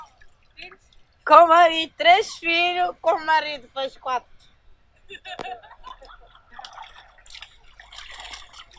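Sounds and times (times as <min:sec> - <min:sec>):
water splashing and dripping while hand-washing laundry: 0:00.0 - 0:01.3, 0:05.7 - 0:08.7
water sloshing and trickling: 0:00.0 - 0:02.6, 0:05.6 - 0:08.7
speech: 0:01.3 - 0:04.3, 0:05.1 - 0:05.7.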